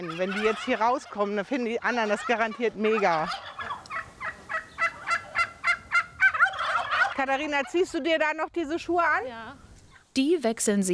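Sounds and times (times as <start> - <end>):
poultry gobbling and clucking in a barn: 0.0 - 8.3
speech: 0.1 - 3.6, 7.2 - 10.9.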